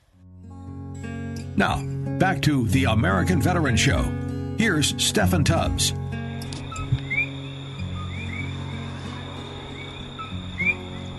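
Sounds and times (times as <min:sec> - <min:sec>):
speech: 0:01.6 - 0:06.1
tree frogs singing near the Kilauea volcano on the Big Island of Hawaii: 0:05.3 - 0:11.1
steady drone of insects: 0:05.4 - 0:11.1.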